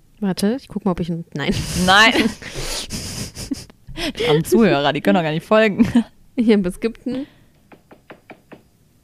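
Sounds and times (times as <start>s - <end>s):
faint room noise: 0.0s - 9.0s
speech: 0.2s - 3.0s, 4.0s - 7.4s
laughter: 1.5s - 4.6s
knocking on a door: 7.7s - 8.7s.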